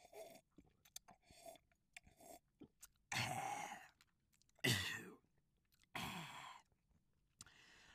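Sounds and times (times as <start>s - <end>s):
mouth clicks and gulps: 0.0s - 4.7s
person choking and coughing after inhaling wine into windpipe: 3.1s - 4.0s, 4.6s - 5.3s.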